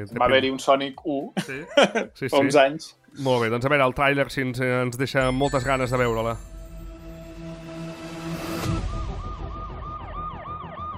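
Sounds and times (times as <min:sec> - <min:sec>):
speech: 0:00.0 - 0:06.6
police siren wailing: 0:08.8 - 0:10.9.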